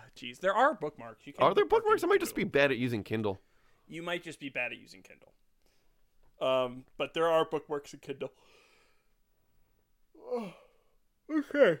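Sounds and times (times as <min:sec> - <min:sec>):
speech: 0:00.2 - 0:05.4, 0:06.4 - 0:08.6, 0:10.3 - 0:10.6, 0:11.3 - 0:11.7
person yawning: 0:10.2 - 0:11.7.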